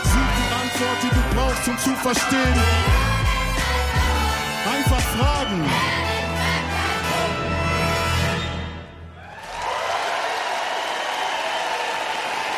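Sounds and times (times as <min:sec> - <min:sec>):
sung tonal music: 0:00.0 - 0:09.1
speech: 0:01.0 - 0:03.2, 0:04.9 - 0:06.2
audience applause for a children's choir: 0:09.2 - 0:12.5.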